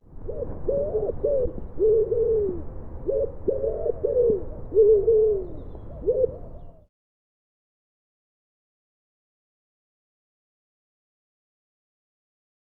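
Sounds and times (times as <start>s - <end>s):
Common wood pigeon song, deep hooting coo phrase: 0.2s - 6.9s.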